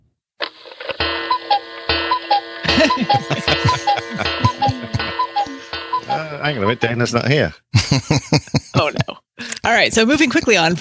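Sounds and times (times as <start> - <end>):
clock ticking: 1.0 - 6.9
dense sustained musical tone: 1.0 - 7.4
laughter: 2.6 - 6.8, 7.8 - 9.2
speech: 2.9 - 4.3, 6.4 - 9.1, 9.7 - 10.7.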